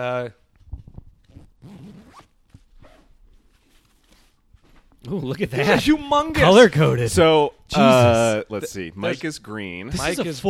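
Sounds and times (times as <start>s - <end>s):
speech: 0.0s - 0.4s, 5.0s - 10.4s
zipper being pulled open: 0.7s - 4.8s.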